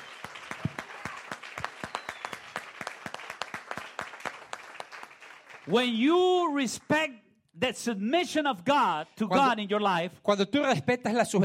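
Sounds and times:
crowd applauding: 0:00.0 - 0:06.1
speech: 0:05.7 - 0:11.4.

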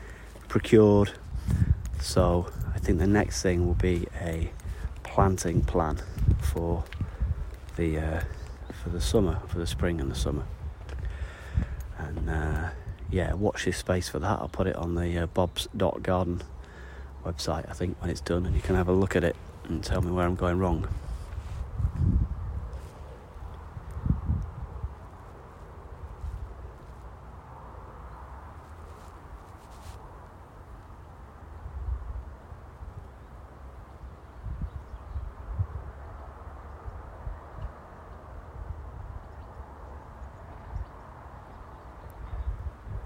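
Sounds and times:
leaves rustling in a garden: 0:00.0 - 0:13.0, 0:18.4 - 0:33.0
outdoor wind gusting against the microphone in a garden: 0:00.0 - 0:14.8, 0:17.6 - 0:27.2, 0:31.5 - 0:33.2, 0:34.1 - 0:43.0
speech: 0:00.5 - 0:04.6, 0:05.2 - 0:06.9, 0:07.8 - 0:10.6, 0:12.2 - 0:16.5, 0:17.2 - 0:21.0.

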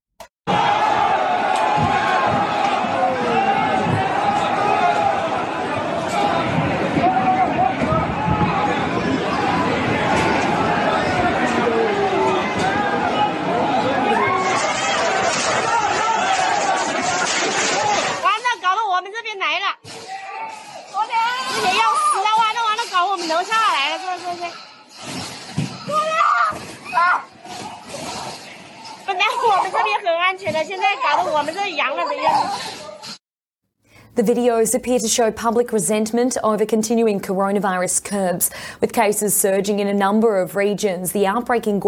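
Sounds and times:
bangs of protesters crashing through barriers: 0:00.5 - 0:18.2, 0:19.8 - 0:33.2
large crowd of protesters shouting and surging through barriers: 0:00.5 - 0:18.7, 0:19.9 - 0:24.9, 0:25.6 - 0:33.1
speech: 0:34.2 - 0:41.8.

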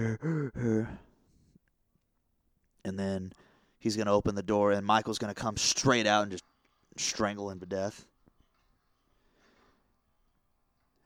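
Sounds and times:
speech: 0:00.0 - 0:01.0, 0:02.9 - 0:08.1
heavy breathing in a horror film scene: 0:00.0 - 0:01.6, 0:09.0 - 0:10.0.

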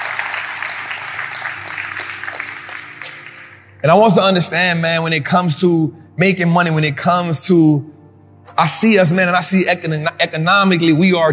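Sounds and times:
crowd applause: 0:00.0 - 0:03.8
speech: 0:03.8 - 0:08.0, 0:08.6 - 0:11.3.

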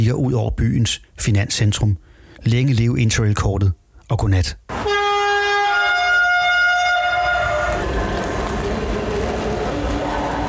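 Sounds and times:
speech: 0:00.0 - 0:05.0
long train horn at the main railway station in Frankfurt: 0:04.8 - 0:10.4
rail traffic rumbling at the main railway station in Frankfurt: 0:05.8 - 0:10.4.

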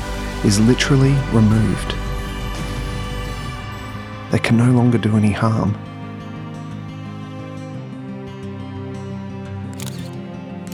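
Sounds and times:
speech: 0:00.4 - 0:02.1, 0:04.3 - 0:05.9
camera shutters clicking: 0:09.7 - 0:10.7.

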